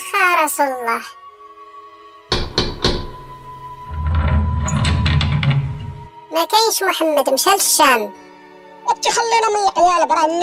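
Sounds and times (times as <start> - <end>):
speech: 0.4 - 1.2, 6.4 - 8.2, 8.9 - 10.4
firm knocking on a door: 2.3 - 5.8.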